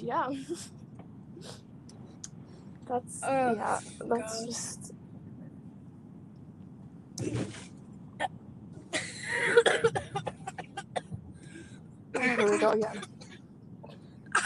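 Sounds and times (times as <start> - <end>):
speech: 0.0 - 0.8, 1.4 - 1.6, 2.9 - 5.0, 7.2 - 7.6, 12.6 - 13.2
harsh coughing fits: 9.0 - 11.1, 12.2 - 13.4.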